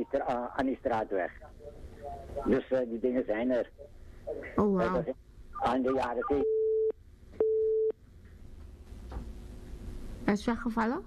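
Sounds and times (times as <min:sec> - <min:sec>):
speech: 0:00.0 - 0:06.5, 0:10.3 - 0:11.0
telephone busy tone after a dropped call: 0:06.4 - 0:07.9.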